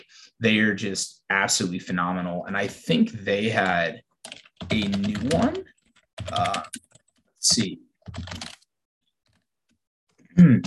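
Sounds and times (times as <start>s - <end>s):
speech: 0.0s - 6.8s, 7.4s - 8.5s, 10.4s - 10.6s
computer keyboard typing: 3.6s - 8.7s.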